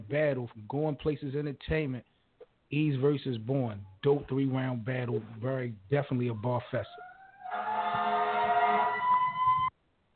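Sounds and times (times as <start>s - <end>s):
speech: 0.1s - 7.1s
fire engine siren in a neighborhood: 6.9s - 9.7s.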